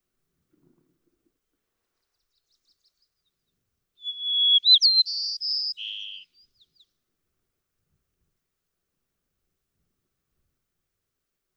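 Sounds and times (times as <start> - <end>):
White-crowned sparrow singing: 4.0 - 6.8.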